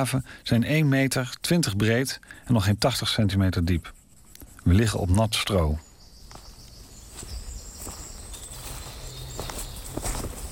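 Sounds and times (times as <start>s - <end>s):
speech: 0.0s - 4.0s, 4.6s - 5.9s
faint high birdsong or insects chirping: 0.0s - 10.5s
footsteps crunching through a forest: 5.7s - 10.5s.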